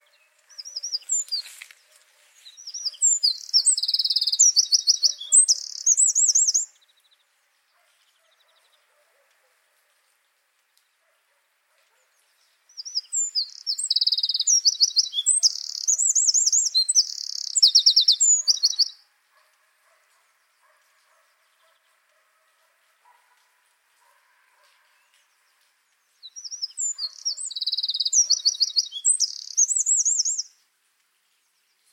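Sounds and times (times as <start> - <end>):
wren singing in Tiefenbach: 0.0 - 1.6, 2.4 - 7.2, 12.2 - 19.0, 25.0 - 30.6.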